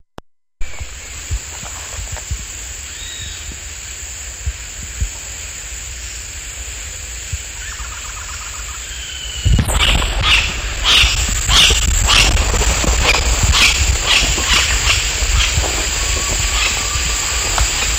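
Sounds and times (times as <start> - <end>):
rufous-headed woodpecker: 7.6 - 17.9.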